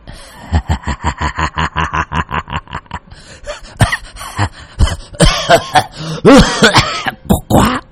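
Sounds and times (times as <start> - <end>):
old man laughing loudly: 0.1 - 7.8
old man in a rough coughing fit: 3.8 - 7.7
speech: 5.8 - 6.9.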